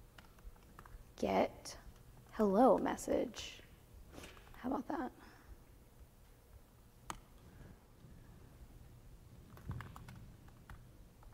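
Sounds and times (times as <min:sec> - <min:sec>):
low steady hum: 0:00.0 - 0:11.3
presenter typing a command on a computer keyboard: 0:00.1 - 0:01.0, 0:09.5 - 0:11.3
speech: 0:01.2 - 0:01.8, 0:02.4 - 0:03.6, 0:04.6 - 0:05.2.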